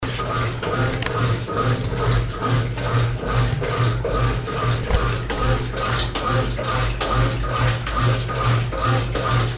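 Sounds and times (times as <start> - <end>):
machine running: 0.1 - 9.5.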